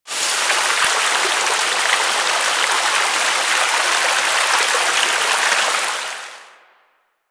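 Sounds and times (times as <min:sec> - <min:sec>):
water fountain burst: 0:00.0 - 0:06.6.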